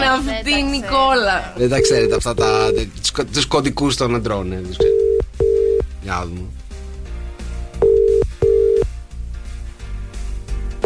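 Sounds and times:
speech: 0.2 - 5.2, 6.0 - 6.6
phone ringback tone of an unanswered outgoing call: 1.7 - 2.9, 4.8 - 5.9, 7.8 - 8.9.

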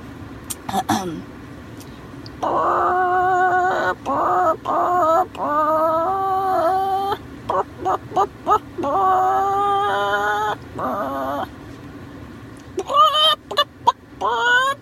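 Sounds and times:
person imitating chicken clucks and squawks: 2.4 - 11.5, 12.6 - 14.8.

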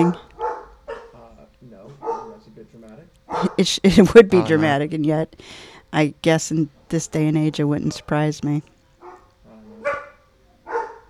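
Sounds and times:
speech: 0.0 - 0.3, 3.3 - 8.7
dog barking: 0.0 - 1.2, 2.0 - 2.4, 3.3 - 3.6, 9.0 - 11.0.

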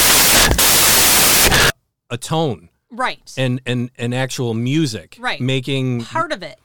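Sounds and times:
fuzzy guitar distortion noise: 0.0 - 1.7
speech: 2.1 - 6.6.

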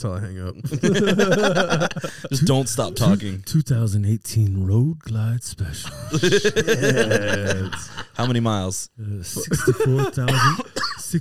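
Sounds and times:
speech: 0.0 - 11.2
laughter: 0.6 - 3.4, 5.8 - 8.6, 9.4 - 10.8
person coughing harshly: 9.4 - 11.2.

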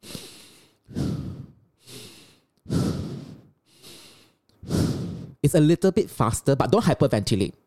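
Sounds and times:
breath-work breathing in a continuous cycle: 0.0 - 5.5
speech: 5.4 - 7.6.

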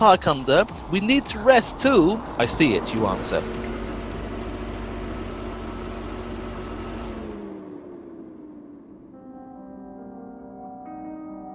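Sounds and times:
speech: 0.0 - 3.7
broadband road noise: 0.0 - 9.1
car engine slowing and idling to a halt: 0.0 - 9.1.

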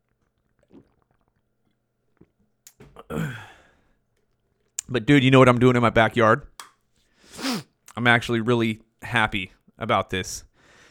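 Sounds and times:
person gulping water: 0.0 - 3.9
breathy exhale of relief: 3.1 - 3.8
speech: 4.9 - 6.5, 8.0 - 10.5.

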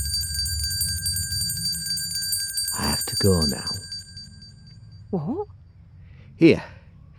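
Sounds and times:
bell ringing with bright sustained high tones: 0.0 - 5.0
low rumbling background: 0.0 - 5.4
speech: 3.1 - 3.8, 5.1 - 5.6, 6.4 - 6.8.

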